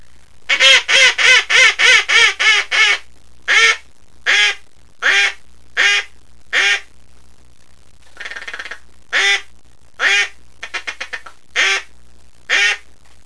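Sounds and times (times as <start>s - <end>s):
double-reed duck call blown loud with raspy quacks: 0.5s - 6.9s, 8.2s - 11.9s, 12.5s - 12.9s.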